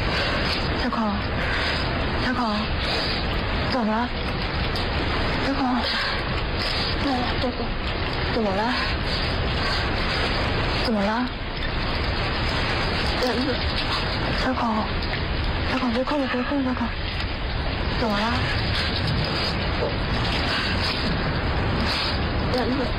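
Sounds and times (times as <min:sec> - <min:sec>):
heavy pattering rain: 0:00.0 - 0:22.9
speech: 0:00.8 - 0:01.6, 0:02.2 - 0:12.0, 0:13.2 - 0:15.1, 0:15.7 - 0:17.2, 0:18.0 - 0:22.9.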